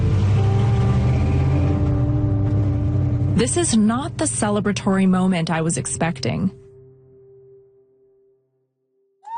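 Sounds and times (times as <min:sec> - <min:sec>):
car engine rumbling as the car pulls away: 0:00.0 - 0:07.0
speech: 0:03.4 - 0:06.6.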